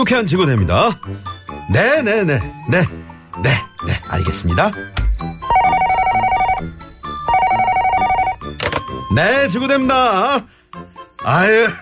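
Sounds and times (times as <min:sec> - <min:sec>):
speech: 0:00.0 - 0:05.0, 0:09.1 - 0:10.6, 0:11.2 - 0:11.8
telephone ringing in electronic trills: 0:05.4 - 0:08.8.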